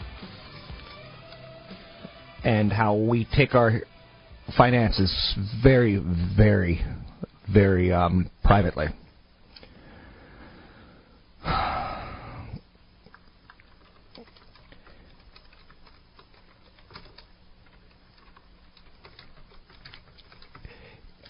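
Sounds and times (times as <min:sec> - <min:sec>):
speech: 0:02.4 - 0:03.9, 0:04.5 - 0:09.0
typing on a computer keyboard: 0:13.1 - 0:21.2.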